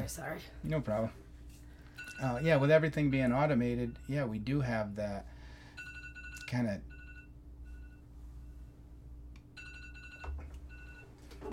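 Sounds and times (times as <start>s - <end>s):
speech: 0.0s - 1.2s, 2.2s - 5.4s, 6.5s - 6.9s
phone alarm chiming bright electronic tones: 2.0s - 4.2s, 5.7s - 8.0s, 9.6s - 11.1s.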